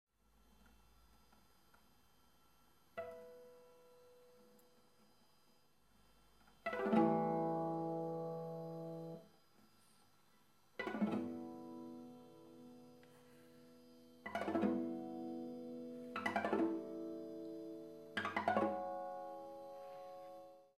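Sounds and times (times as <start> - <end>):
harmonics on adjacent strings: 6.6 - 9.2, 10.8 - 13.1, 14.2 - 20.7.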